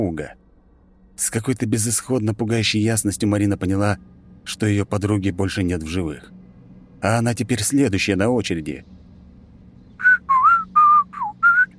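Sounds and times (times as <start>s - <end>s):
speech: 0.0s - 0.4s, 1.2s - 6.4s, 7.0s - 9.0s
low steady hum: 0.0s - 11.7s
person whistling a pop tune off-key: 10.0s - 11.7s.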